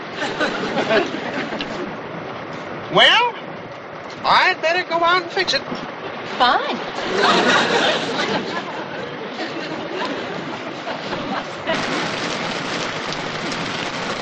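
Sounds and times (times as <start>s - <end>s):
laughter: 0.0s - 1.9s, 7.0s - 12.0s
speech: 0.2s - 2.0s, 2.9s - 3.4s, 4.2s - 8.8s
heavy rain pouring outside: 11.6s - 14.1s.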